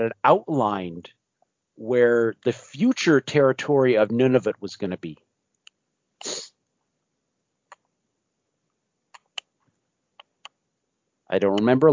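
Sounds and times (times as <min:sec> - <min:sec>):
speech: 0:00.0 - 0:01.2, 0:01.8 - 0:05.3, 0:11.3 - 0:11.9
person sneezing: 0:06.2 - 0:06.5
faint clicks and ticks: 0:07.7 - 0:07.9, 0:09.1 - 0:10.6.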